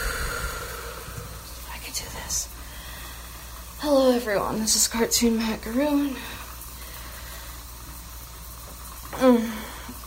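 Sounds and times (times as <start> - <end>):
short voiced vocal sound: 0.0 - 1.6
shower water running: 0.0 - 10.0
speech: 2.0 - 2.6, 3.8 - 6.4, 9.2 - 9.5.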